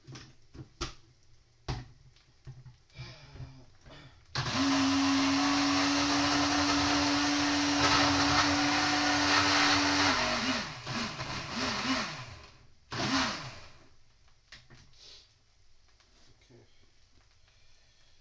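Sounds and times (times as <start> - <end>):
blender whirring through chopped tomatoes: 4.4 - 13.9.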